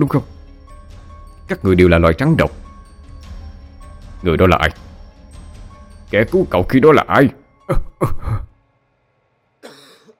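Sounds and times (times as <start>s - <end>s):
speech: 0.0s - 0.4s, 1.5s - 2.6s, 4.2s - 4.8s, 6.1s - 8.5s
old man coughing with wheezing breath: 7.7s - 8.6s, 9.6s - 10.1s.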